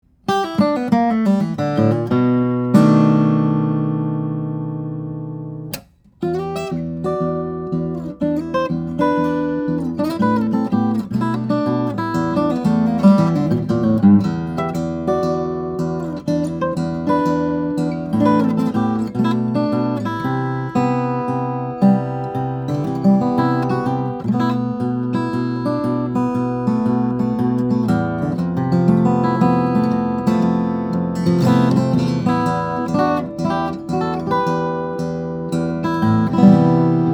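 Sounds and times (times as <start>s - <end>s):
steel string flattop OM guitar of cocobolo and redwood: 0.2s - 37.1s.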